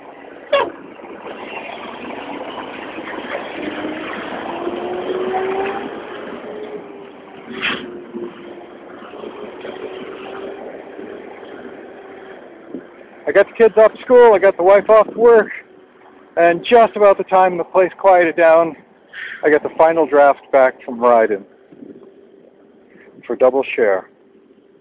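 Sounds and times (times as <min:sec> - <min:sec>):
heavy garbage truck engine passing: 0:00.0 - 0:14.7
speech: 0:13.4 - 0:15.6, 0:16.4 - 0:21.5, 0:23.3 - 0:24.1.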